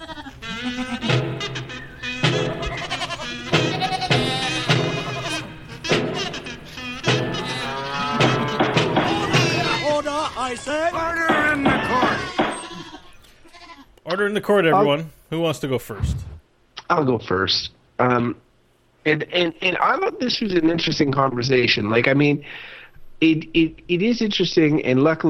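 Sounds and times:
flock of sheep bleating: 0.0s - 13.9s
speech: 14.2s - 16.3s, 16.9s - 18.4s, 19.0s - 25.2s.

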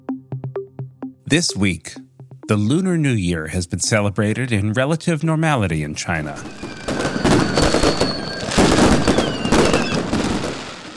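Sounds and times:
speech: 1.3s - 7.7s
fireworks exploding: 6.3s - 10.9s.

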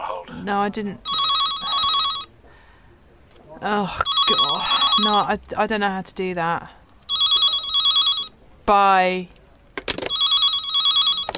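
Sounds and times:
speech: 0.4s - 1.1s, 3.6s - 6.8s, 8.7s - 9.4s
telephone ringing with a buzzy electronic trill: 1.1s - 2.3s, 4.0s - 5.3s, 7.1s - 8.3s, 10.0s - 11.3s.

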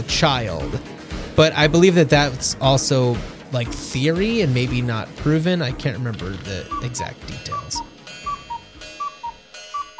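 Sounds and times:
speech: 0.1s - 7.9s
cuckoo clock two-note descending call: 6.6s - 9.9s.

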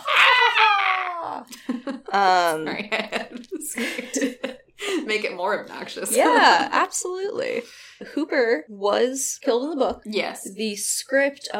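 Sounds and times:
person letting out a loud theatrical scream: 0.0s - 1.5s
person wailing: 0.0s - 1.5s
speech: 1.9s - 4.4s, 5.1s - 11.5s.

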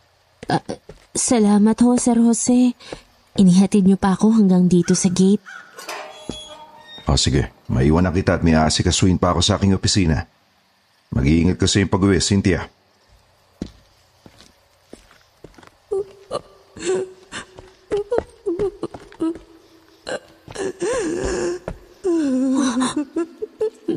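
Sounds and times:
speech: 0.5s - 5.9s, 7.1s - 10.4s, 11.1s - 12.8s
woman sobbing beside a swimming pool at a resort: 15.9s - 23.9s.

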